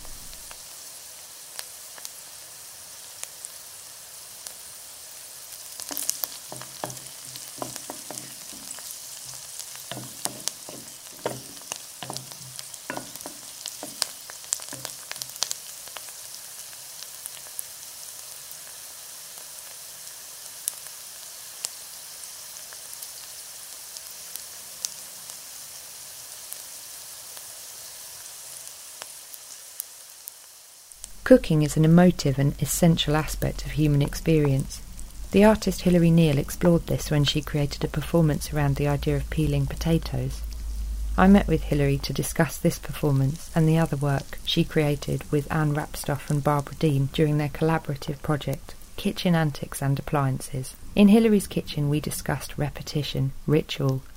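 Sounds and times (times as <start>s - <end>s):
onions sizzling in a hot pan: 0.0s - 54.1s
spatula scraping and stirring onions in a pan: 5.7s - 15.5s
speech: 31.3s - 40.5s, 41.2s - 54.1s.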